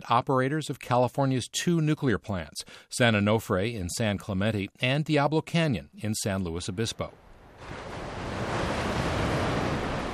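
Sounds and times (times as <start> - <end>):
speech: 0.1 - 8.0
wind: 5.4 - 10.1
ocean waves crashing against cliffs: 7.1 - 10.1.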